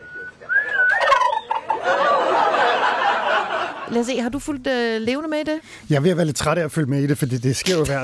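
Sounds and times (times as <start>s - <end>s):
turkey gobbling loudly: 0.0s - 3.3s
laughter: 1.5s - 4.0s
speech: 3.9s - 8.0s.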